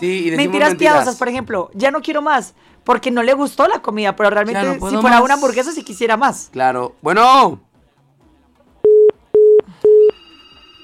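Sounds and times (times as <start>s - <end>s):
speech: 0.0s - 7.7s
electronic telephone-line tones: 8.8s - 10.8s.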